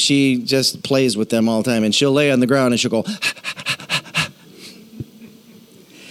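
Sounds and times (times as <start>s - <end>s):
speech: 0.0s - 3.7s
person imitating a dog panting: 3.1s - 4.5s.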